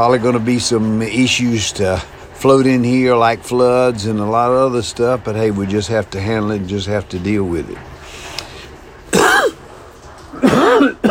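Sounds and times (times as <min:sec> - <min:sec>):
speech: 0:00.0 - 0:07.9
heavy raspy chesty coughs: 0:09.1 - 0:09.6, 0:10.3 - 0:11.0.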